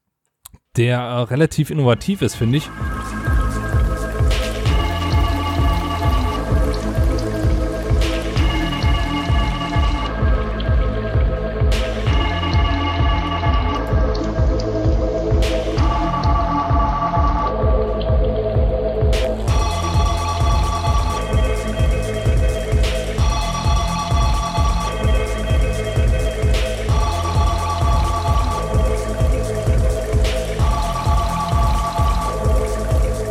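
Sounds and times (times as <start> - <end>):
speech: 0.8 - 3.2
underground techno track with pulsing beat and layered synth tones: 0.8 - 33.3.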